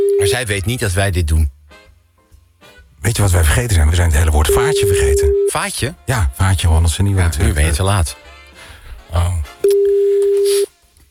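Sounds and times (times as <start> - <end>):
telephone tone as a call is dialled: 0.0 - 0.4, 4.5 - 5.6, 9.6 - 10.7
speech: 0.3 - 1.6, 3.0 - 8.2, 9.1 - 9.8.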